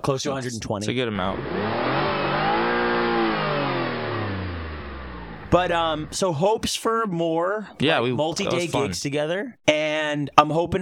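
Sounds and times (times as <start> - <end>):
speech: 0.0 - 2.0, 5.5 - 10.8
car engine revving: 1.2 - 6.2.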